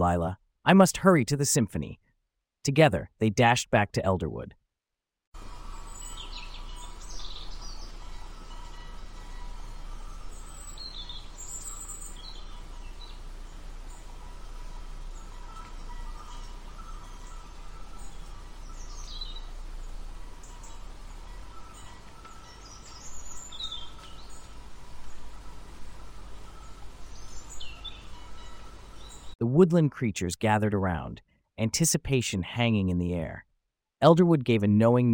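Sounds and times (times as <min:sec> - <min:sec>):
speech: 0:00.0 - 0:02.0, 0:02.6 - 0:04.6, 0:29.6 - 0:35.1
low hum: 0:05.4 - 0:29.4
nightingale chirping: 0:05.4 - 0:29.4.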